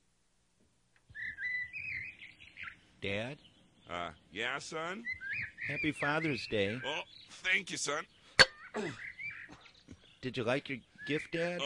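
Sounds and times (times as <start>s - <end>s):
seagulls calling: 1.1s - 10.2s
speech: 3.0s - 8.2s, 8.8s - 9.1s, 10.2s - 11.6s.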